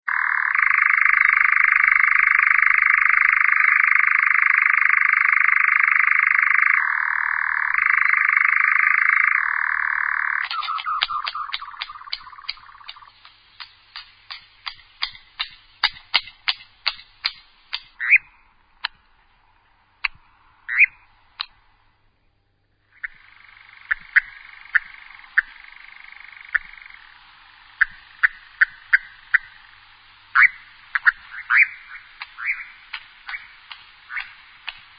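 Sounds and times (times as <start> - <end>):
nightjar singing: 0.0 - 18.6, 20.6 - 21.6, 22.8 - 34.9.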